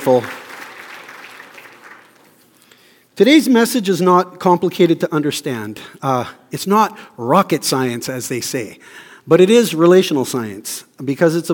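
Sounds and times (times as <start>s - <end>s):
speech: 0.0s - 0.4s, 3.2s - 11.5s
crowd applauding: 0.0s - 2.4s.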